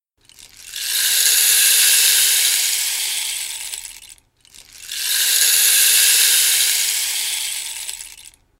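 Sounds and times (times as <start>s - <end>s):
rainstick: 0.2s - 8.5s.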